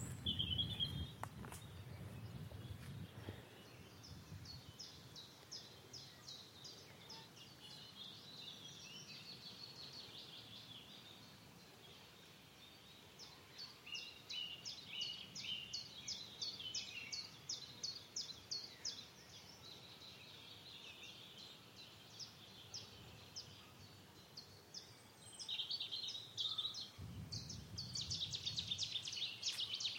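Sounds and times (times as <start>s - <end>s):
gusts of wind rumbling: 0.0s - 4.8s, 26.9s - 29.3s
Cetti's warbler singing in willows: 0.0s - 29.9s.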